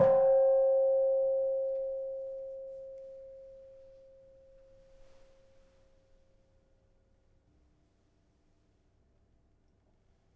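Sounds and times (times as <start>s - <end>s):
gamelan kenong gong: 0.0s - 4.8s.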